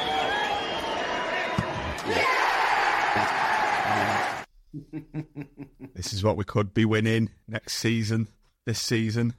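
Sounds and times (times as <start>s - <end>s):
dense stadium crowd roaring: 0.0s - 4.5s
speech: 2.1s - 2.3s, 4.8s - 9.3s.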